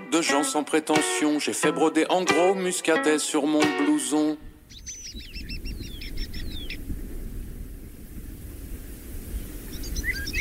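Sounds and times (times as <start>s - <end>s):
speech: 0.1s - 5.0s
small birds singing in chirping phrases: 4.6s - 6.9s, 9.7s - 10.3s.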